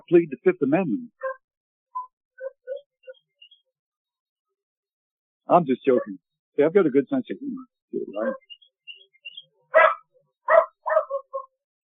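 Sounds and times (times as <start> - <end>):
speech: 0.1 - 1.4, 5.5 - 8.5
dog yips: 1.2 - 1.4, 2.0 - 3.2, 8.2 - 8.5, 9.7 - 11.6
dogs barking: 1.2 - 1.4, 2.4 - 2.9, 5.9 - 6.2, 8.2 - 8.5, 9.7 - 11.6.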